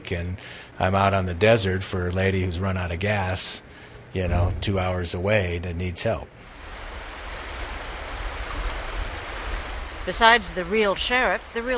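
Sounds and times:
speech: 0.1 - 6.5, 10.1 - 11.7
flowing river water rushing: 6.4 - 11.7.

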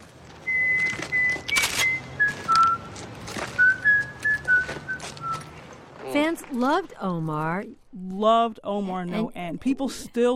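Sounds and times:
man whistling a bouncy nursery-rhyme melody: 0.4 - 2.9, 3.6 - 5.5
speech: 6.5 - 10.3.

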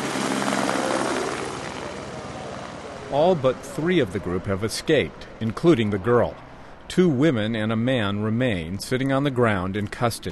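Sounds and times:
helicopter rotor roar: 0.0 - 6.8
speech: 3.1 - 10.2.

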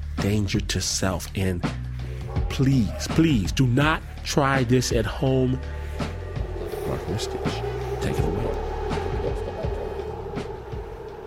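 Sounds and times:
speech: 0.2 - 1.8, 2.5 - 5.8, 6.9 - 8.7
New York City subway train rumbling: 6.4 - 11.2.

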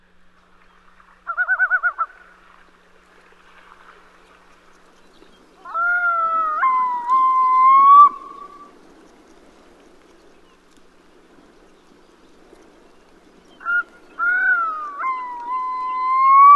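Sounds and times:
yellow-billed loon calling: 1.3 - 2.3, 5.6 - 8.8, 13.6 - 16.5.

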